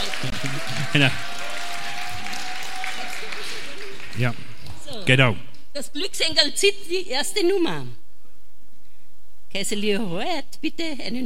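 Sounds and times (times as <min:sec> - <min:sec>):
audience applause: 0:00.0 - 0:05.3
speech: 0:00.9 - 0:01.4, 0:04.2 - 0:04.4, 0:05.1 - 0:08.0, 0:09.5 - 0:11.2.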